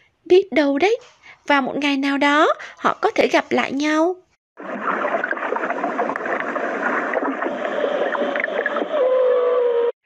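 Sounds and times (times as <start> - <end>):
speech: 0.3 - 4.7
murmuring sea waves: 4.6 - 9.8
whale song: 4.6 - 10.0.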